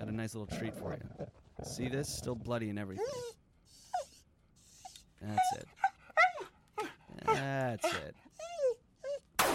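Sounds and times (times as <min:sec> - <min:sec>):
speech: 0:00.1 - 0:03.4, 0:05.2 - 0:05.7, 0:07.4 - 0:08.3
dog whimpering and yelping: 0:02.9 - 0:09.3.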